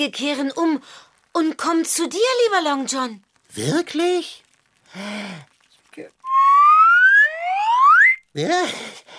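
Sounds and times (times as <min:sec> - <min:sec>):
speech: 0:00.0 - 0:06.2, 0:08.4 - 0:09.1
shrill whistle blown in upward-gliding tones: 0:06.2 - 0:08.2.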